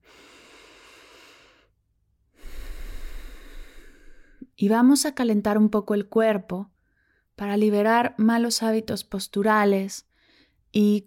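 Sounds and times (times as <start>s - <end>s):
person breathing during a guided body warm-up: 0.0s - 4.5s, 6.8s - 7.3s, 10.1s - 10.6s
speech: 4.5s - 6.7s, 7.4s - 10.1s, 10.7s - 11.0s.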